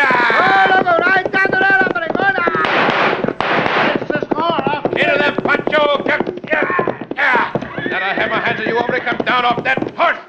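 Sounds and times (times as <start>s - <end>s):
excited voices shouting: 0.0s - 4.0s, 5.0s - 9.6s
gunshots fired during a chase on horseback: 2.6s - 4.2s.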